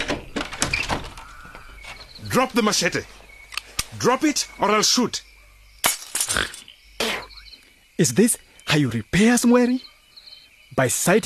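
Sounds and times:
house door being pulled open: 0.0s - 2.4s
speech: 2.3s - 3.2s, 3.9s - 5.2s, 8.0s - 9.9s, 10.7s - 11.2s.

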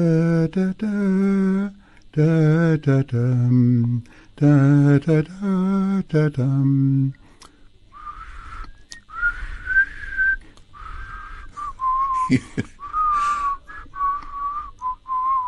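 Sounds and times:
speech: 0.0s - 7.2s, 12.3s - 12.7s
person whistling a tune: 8.0s - 15.4s.

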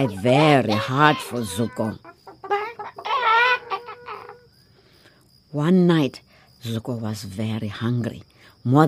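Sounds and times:
speech: 0.0s - 2.1s, 5.5s - 8.8s
chickens screeching and cackling: 0.0s - 4.6s.

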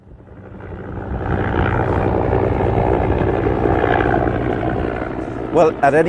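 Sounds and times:
helicopter engine and rotors at an airbase on the Jordanian-Israeli border: 0.0s - 6.0s
speech: 5.6s - 6.0s.

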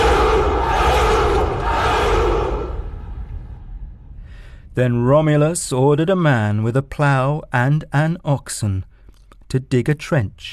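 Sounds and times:
large crowd cheering: 0.0s - 3.5s
speech: 4.8s - 8.9s, 9.5s - 10.5s.

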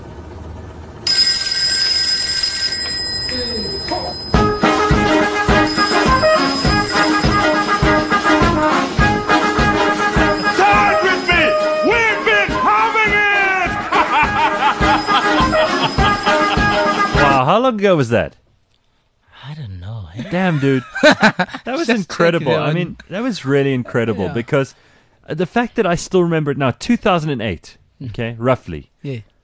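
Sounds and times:
mobile phone ringing with a full song as ringtone: 1.1s - 17.4s
faint chuckling: 14.0s - 17.2s
speech: 17.7s - 18.4s, 20.2s - 29.3s.

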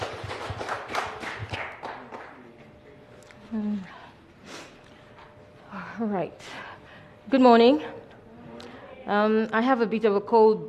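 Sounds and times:
scattering of claps from an audience: 0.0s - 2.8s
speech: 6.0s - 6.7s, 7.3s - 8.0s, 9.1s - 10.6s.

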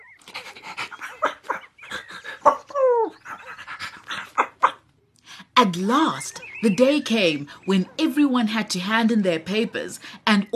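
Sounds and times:
puppy panting: 0.1s - 4.8s
speech: 5.6s - 10.5s.

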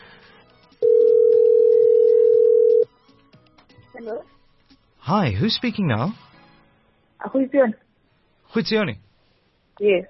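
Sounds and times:
outgoing phone call ringing tone: 0.8s - 2.9s
speech: 5.1s - 6.2s, 7.3s - 7.8s, 8.5s - 9.0s, 9.8s - 10.0s.

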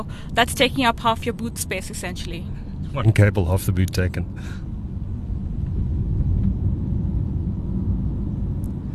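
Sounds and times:
speech: 0.0s - 4.7s
low road rumble inside an electric car driving through traffic: 0.0s - 8.9s.

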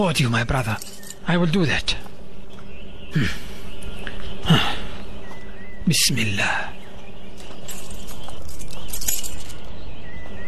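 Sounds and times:
speech: 0.0s - 2.0s, 3.1s - 3.5s, 4.4s - 4.7s, 5.8s - 6.7s
keys jangling while opening a safe: 0.7s - 1.2s, 7.4s - 9.7s.

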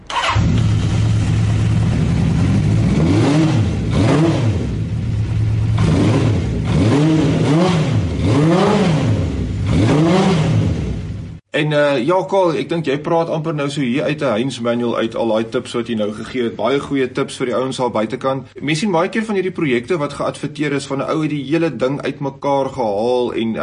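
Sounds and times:
Honda CB650 motorcycle engine idling and revving: 0.0s - 11.4s
speech: 11.6s - 23.6s.

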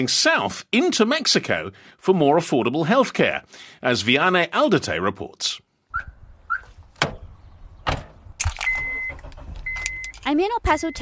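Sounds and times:
speech: 0.0s - 6.1s, 10.3s - 11.0s
sharp clunks of a car door: 7.0s - 10.0s.

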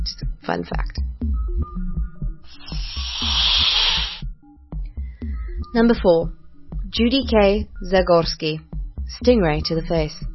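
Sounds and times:
speech: 0.0s - 1.3s, 5.7s - 10.3s
low rhythmic music: 0.0s - 10.3s
snake hissing: 2.5s - 4.2s.

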